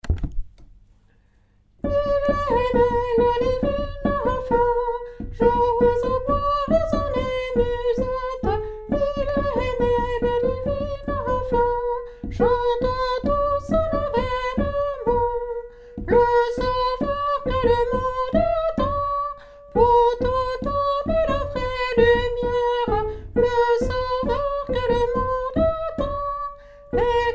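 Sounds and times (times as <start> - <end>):
soprano and tenor singing a carol: 1.8 - 27.3.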